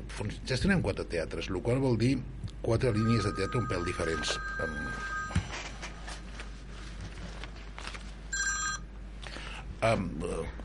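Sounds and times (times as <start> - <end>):
low steady hum: 0.0 - 10.6
speech: 0.2 - 5.1, 9.8 - 10.6
telephone ringing in short electronic bursts: 2.8 - 6.2, 8.3 - 8.9.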